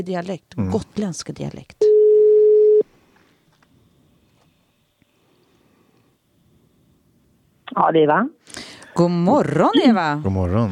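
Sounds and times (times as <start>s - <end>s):
speech: 0.0s - 1.8s, 7.8s - 10.7s
telephone ringing tone while placing a call: 1.8s - 2.8s.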